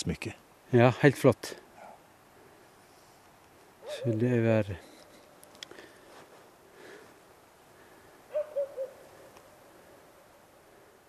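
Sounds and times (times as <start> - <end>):
speech: 0.0 - 1.6, 3.9 - 4.9
sheepdog barking at people on the Sverrestien path: 1.8 - 2.0, 3.8 - 4.2, 8.3 - 9.0.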